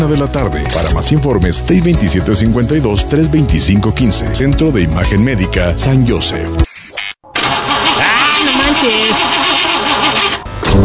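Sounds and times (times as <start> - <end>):
speech: 0.0 - 6.7, 8.8 - 9.4
car engine with new seals and spark plugs cranking but failing to start: 7.4 - 10.8.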